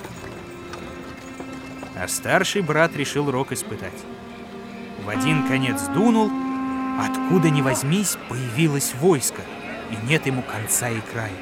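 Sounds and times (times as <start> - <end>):
horse hooves clip-clopping as a horse-drawn carriage pulls away: 0.0 - 3.2
speech: 2.0 - 4.2, 5.0 - 6.4, 7.0 - 11.4.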